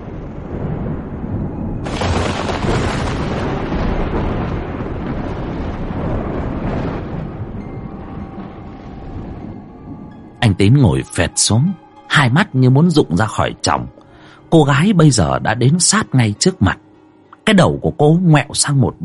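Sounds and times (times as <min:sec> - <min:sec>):
thunder rumbling and cracking in a stormy scene with lightning: 0:00.0 - 0:11.3
speech: 0:10.6 - 0:16.8, 0:17.5 - 0:19.0.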